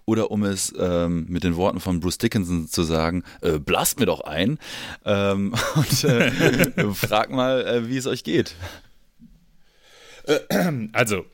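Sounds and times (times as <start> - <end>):
speech: 0.1 - 8.8, 10.3 - 11.3
laughter: 5.6 - 7.3
low breathy noise: 9.6 - 10.6
person with bronchitis coughing harshly: 10.2 - 10.9.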